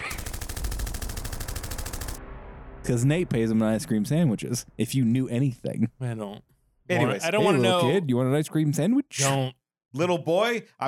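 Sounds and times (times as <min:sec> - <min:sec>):
rapid automatic gunfire: 0:00.0 - 0:02.2
low rumble: 0:01.8 - 0:05.3
speech: 0:02.9 - 0:10.8.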